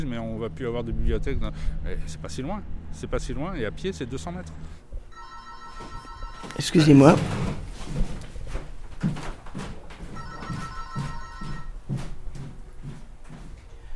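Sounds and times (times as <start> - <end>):
speech: 0.0 - 4.8, 5.8 - 8.1
telephone ringing: 5.1 - 7.2, 10.2 - 11.7
steady rhythmic knocking and clattering thuds: 5.6 - 13.6.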